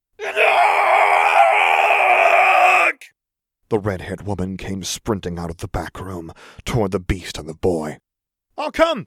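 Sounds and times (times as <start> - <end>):
rough-voiced scream of pain: 0.2 - 3.1
speech: 3.7 - 9.0.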